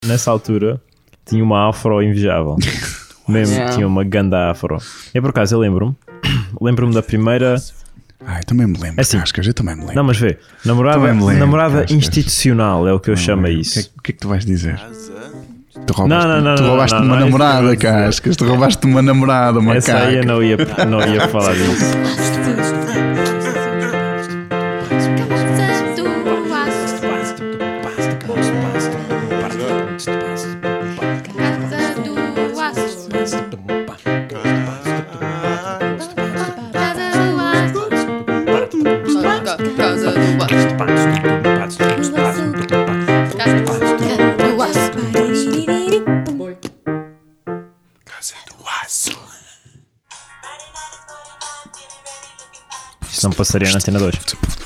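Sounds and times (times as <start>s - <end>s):
speech: 0.0s - 23.4s, 53.2s - 54.6s
laughter: 2.6s - 3.7s, 16.2s - 24.1s
love song played on radio show: 3.3s - 3.9s, 6.0s - 6.6s, 10.9s - 11.8s, 14.8s - 48.0s, 50.1s - 53.0s.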